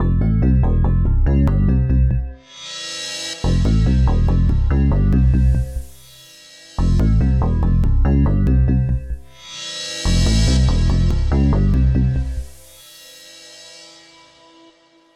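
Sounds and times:
horror bassline intro: 0.0s - 6.1s, 6.8s - 12.8s.

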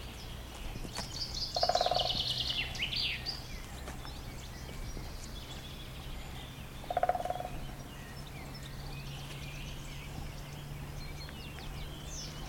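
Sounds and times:
high twittering songbird: 0.0s - 12.4s
low rumble: 0.0s - 12.4s
woodpecker calling in low even pulses: 0.0s - 12.4s.

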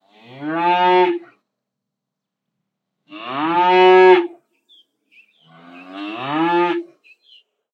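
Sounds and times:
cow mooing: 0.1s - 1.3s, 3.1s - 4.3s, 5.5s - 6.9s.

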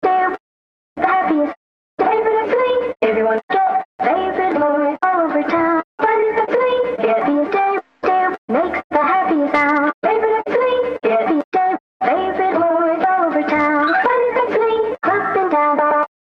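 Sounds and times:
vintage chopped vocal samples: 1.0s - 16.1s.

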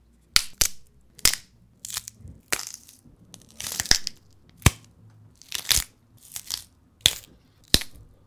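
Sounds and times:
celery snapping as bone break effect: 0.4s - 8.1s.

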